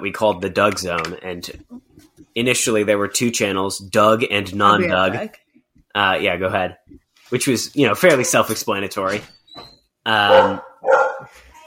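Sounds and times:
speech: 0.0 - 1.7, 2.4 - 5.4, 6.0 - 10.7
dog barking: 10.2 - 11.4.

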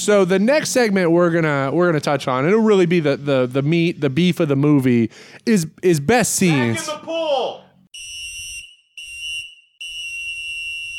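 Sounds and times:
speech: 0.0 - 7.6
shrill whistle blasts: 7.9 - 10.9.

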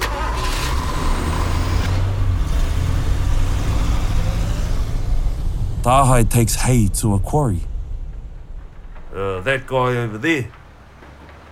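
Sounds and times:
truck engine rumbling: 0.0 - 11.4
speech: 5.8 - 7.7, 9.2 - 10.6.

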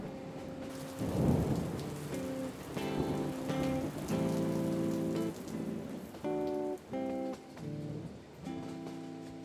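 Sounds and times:
steady rain: 0.0 - 9.4
low rumble of thunder: 0.7 - 4.4.

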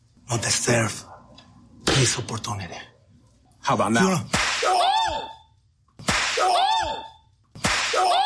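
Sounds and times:
speech: 0.3 - 1.1, 2.0 - 2.9, 3.6 - 5.3
hard open-hand slap: 6.0 - 6.6, 7.6 - 8.1.

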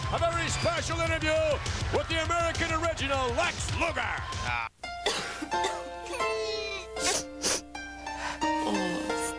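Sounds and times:
speech: 0.1 - 4.7
steady tonal musical background: 4.8 - 9.3
person coughing: 5.0 - 6.3, 6.9 - 7.6.

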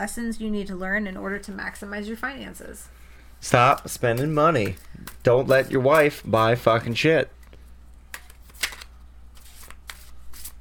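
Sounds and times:
speech: 0.0 - 7.4
tarot card deck being shuffled: 8.2 - 10.5.

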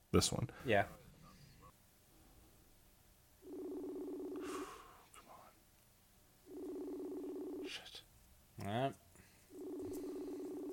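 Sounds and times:
speech: 0.1 - 1.0, 8.6 - 9.0
phone ringback tone, a steady buzzing pitch: 3.4 - 4.6, 6.5 - 7.7, 9.5 - 10.7.

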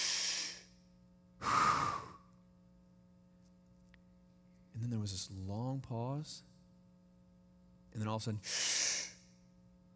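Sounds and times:
person imitating labored breathing of a man dying of lung cancer: 0.0 - 0.7, 1.4 - 2.2
speech: 4.8 - 6.5, 8.0 - 8.8.

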